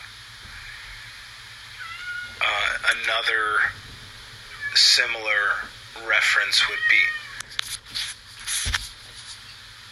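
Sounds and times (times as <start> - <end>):
cat soft chirps: 1.7 - 2.5, 4.5 - 5.0, 6.6 - 7.4
cat meowing for attention: 1.7 - 2.8, 4.5 - 5.0, 6.6 - 7.5
speech: 2.9 - 3.8, 4.8 - 7.2
brushing and rustling noises: 7.4 - 9.6.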